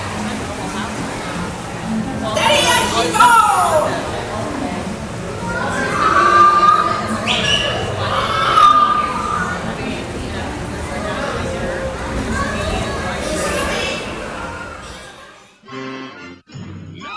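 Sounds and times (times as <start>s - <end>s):
busy crowd-like noise: 0.0s - 16.4s
parrots squawking and chattering at a theme park ride: 5.8s - 9.7s.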